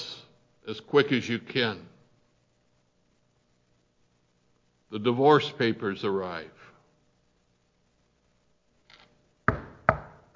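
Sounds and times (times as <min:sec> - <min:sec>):
speech: 0:00.7 - 0:01.9, 0:04.9 - 0:06.7
loud sharp knocks on a door: 0:09.5 - 0:10.3.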